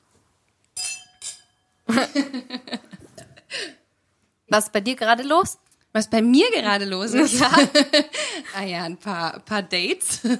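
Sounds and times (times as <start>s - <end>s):
glasses clinking in a toast: 0.8s - 1.8s
speech: 1.9s - 2.8s, 4.5s - 10.3s
several people laughing: 1.9s - 3.4s, 7.2s - 8.2s.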